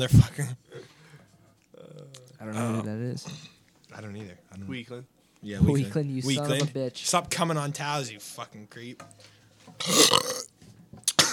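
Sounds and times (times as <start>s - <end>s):
speech: 0.0s - 0.9s, 2.4s - 10.4s
loud raspy burp: 9.8s - 10.5s.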